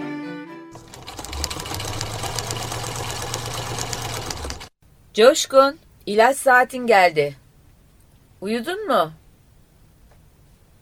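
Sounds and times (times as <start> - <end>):
sewing machine running indoors: 0.7 - 4.7
speech: 5.2 - 7.4, 8.4 - 9.2.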